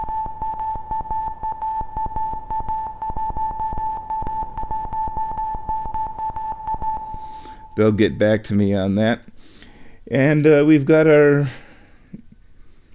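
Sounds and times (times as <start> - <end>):
steady sustained synthesizer tone: 0.0 - 8.4
quick rhythmic electronic clicks: 0.0 - 8.5
speech: 7.8 - 9.3, 10.1 - 11.6.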